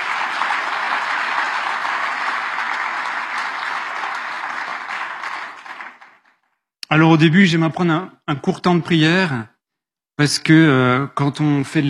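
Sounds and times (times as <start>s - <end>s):
crowd applauding during a live radio broadcast: 0.0s - 6.6s
speech: 6.9s - 9.5s, 10.2s - 11.8s.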